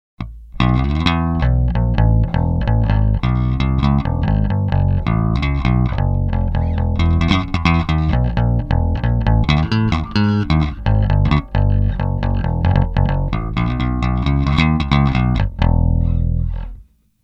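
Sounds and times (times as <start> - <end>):
bass guitar played with an active pick: 0.2 - 17.0.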